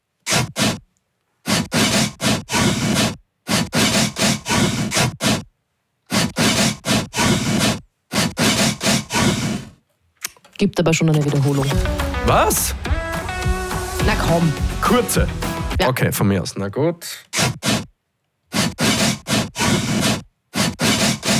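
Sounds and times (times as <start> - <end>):
newly replaced less rusty saw blade rasping through wood: 0.2 - 0.8, 1.4 - 5.5, 6.1 - 10.4, 11.3 - 15.8, 17.3 - 17.9, 18.5 - 21.3
speech: 10.6 - 12.9, 14.0 - 17.8.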